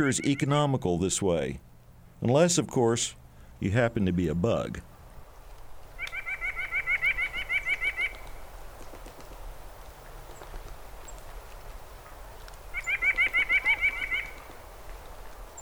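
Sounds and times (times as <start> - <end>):
speech: 0.0 - 4.9
white-breasted nuthatch calling: 6.0 - 8.3, 12.7 - 14.5.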